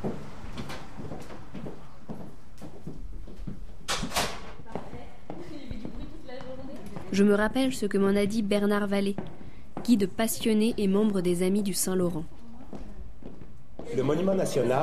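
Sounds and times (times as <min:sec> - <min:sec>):
door being opened: 0:03.9 - 0:04.6
speech: 0:07.1 - 0:09.3, 0:09.9 - 0:12.4, 0:14.0 - 0:14.8.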